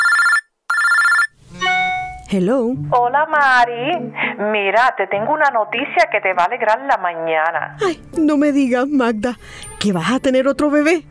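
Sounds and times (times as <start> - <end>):
telephone ringing for an incoming call: 0.0 - 1.4
speech: 2.3 - 11.0.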